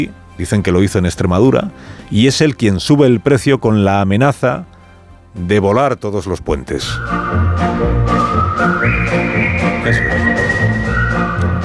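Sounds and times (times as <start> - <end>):
speech: 0.0 - 4.7, 5.3 - 10.8
bright whistled march melody: 6.7 - 11.6.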